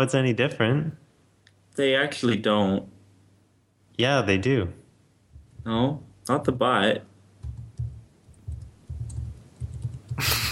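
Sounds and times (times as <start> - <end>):
speech: 0.0 - 1.0, 1.8 - 3.0, 4.0 - 4.8, 5.6 - 7.1, 10.2 - 10.4
people furiously typing on computer keyboards: 7.4 - 10.3.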